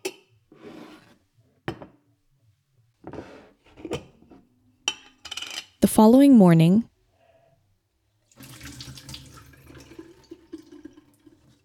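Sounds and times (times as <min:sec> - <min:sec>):
speech: 0:05.9 - 0:06.9
tap water running into a sink: 0:08.3 - 0:11.6.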